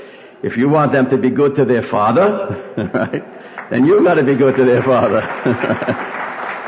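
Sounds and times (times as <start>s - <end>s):
speech: 0.4s - 6.2s
laughter: 2.5s - 6.4s
roomful of people applauding: 3.5s - 6.6s.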